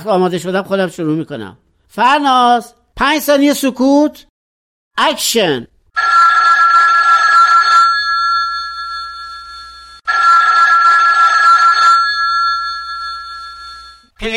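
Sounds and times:
speech: 0:00.0 - 0:04.3, 0:05.0 - 0:06.4, 0:14.2 - 0:14.3
telephone ringing: 0:06.0 - 0:14.2.

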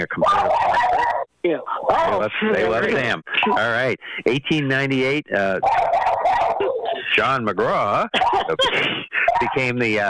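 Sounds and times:
speech: 0:00.0 - 0:05.9, 0:07.1 - 0:10.0
dog barking and howling: 0:00.3 - 0:01.2, 0:05.6 - 0:06.8
laughter: 0:01.8 - 0:04.0, 0:06.2 - 0:10.0.

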